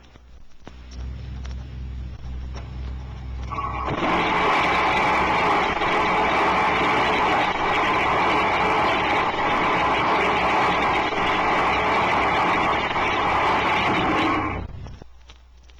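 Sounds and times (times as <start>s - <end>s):
low rumble: 0.7s - 15.1s
rocket thrust engine exhaust on test stand: 1.0s - 15.0s.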